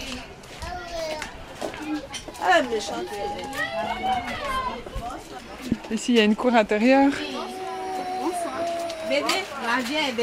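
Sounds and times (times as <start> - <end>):
children's voices outdoors: 0.6 - 5.6, 7.0 - 9.6
speech: 2.4 - 4.9, 5.9 - 7.3, 9.1 - 10.2.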